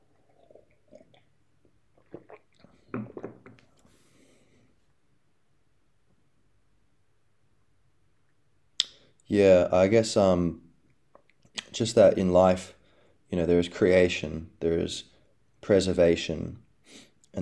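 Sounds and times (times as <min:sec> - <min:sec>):
sipping tea: 0:00.0 - 0:03.9
slurping and swallowing mouth sounds: 0:00.0 - 0:03.9
speech: 0:09.3 - 0:10.6, 0:11.8 - 0:15.1, 0:15.7 - 0:17.3.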